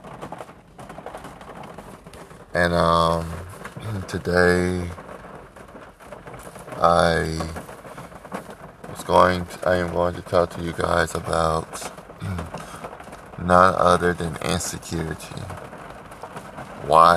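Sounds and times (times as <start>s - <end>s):
steady hiss of rain falling outside: 0.0s - 17.1s
speech: 2.5s - 3.4s, 4.0s - 5.0s, 6.8s - 7.6s, 9.1s - 12.4s, 13.5s - 15.5s, 16.9s - 17.1s.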